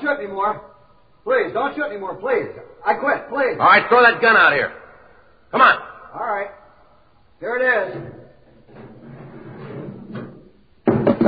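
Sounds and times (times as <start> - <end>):
speech: 0.2 - 4.8, 5.5 - 6.6, 7.4 - 8.9
door shutting with a loud thud: 7.9 - 8.9, 9.6 - 11.2
door scraping and creaking with a low dragging rumble: 7.9 - 10.6.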